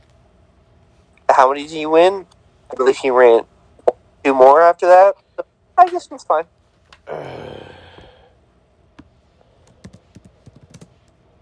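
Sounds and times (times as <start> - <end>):
speech: 1.4 - 3.5, 4.2 - 7.4
breathy burst: 7.0 - 8.4
typing on a computer keyboard: 9.6 - 11.1.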